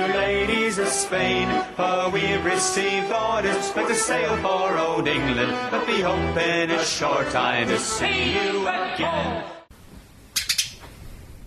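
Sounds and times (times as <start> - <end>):
speech: 0.3 - 9.6
pet sparrow screeching in its cage: 10.4 - 10.8.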